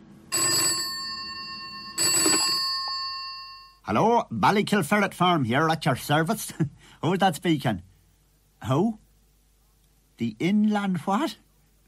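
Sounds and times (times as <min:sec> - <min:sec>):
telephone ringing with a bright buzzing trill: 0:00.3 - 0:03.8
speech: 0:03.9 - 0:07.9, 0:08.6 - 0:09.0, 0:10.2 - 0:11.4.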